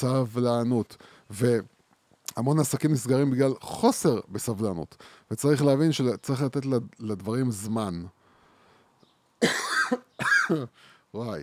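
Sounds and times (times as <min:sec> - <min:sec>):
speech: 0:00.0 - 0:08.2, 0:09.4 - 0:11.4
faint trailing breath: 0:01.0 - 0:01.3, 0:05.0 - 0:05.3, 0:08.2 - 0:09.1, 0:10.7 - 0:11.1
loud raspy coughs: 0:09.4 - 0:10.8.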